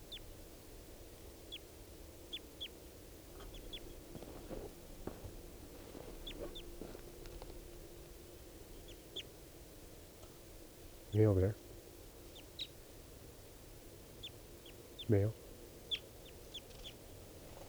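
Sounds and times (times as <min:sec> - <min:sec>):
birds chirping: 0:00.0 - 0:00.4, 0:01.4 - 0:09.3, 0:14.0 - 0:17.6
low outdoor rumble: 0:00.0 - 0:17.6
speech: 0:11.2 - 0:11.6, 0:15.1 - 0:15.4.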